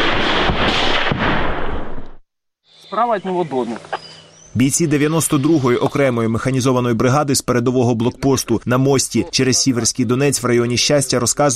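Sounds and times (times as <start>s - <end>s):
dense sustained gunfire during shelling of positions: 0.0s - 2.2s
speech: 2.9s - 11.5s.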